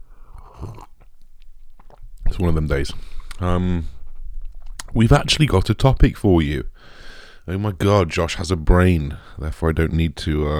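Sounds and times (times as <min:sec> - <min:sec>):
slurping of black coffee: 0:00.0 - 0:05.4
mouth clicks: 0:00.0 - 0:07.5
swallowing: 0:00.0 - 0:07.5
speech: 0:02.4 - 0:04.0, 0:05.0 - 0:10.5.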